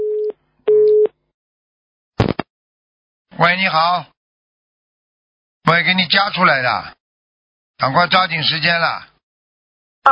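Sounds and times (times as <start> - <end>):
telephone busy tone after call drops: 0.0 - 1.1
speech: 3.4 - 4.1, 5.6 - 7.0, 7.8 - 9.1.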